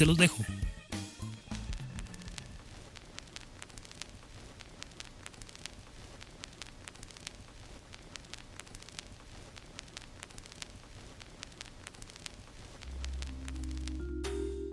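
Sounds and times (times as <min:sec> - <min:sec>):
speech: 0:00.0 - 0:00.7
vinyl record surface hiss and crackle during playback: 0:00.0 - 0:14.7
low rumble: 0:12.8 - 0:14.7.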